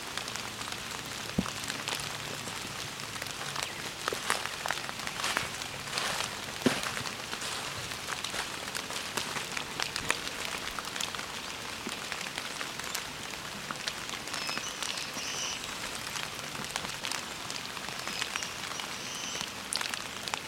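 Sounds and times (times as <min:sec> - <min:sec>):
steady rain pattering on surfaces: 0:00.0 - 0:20.4.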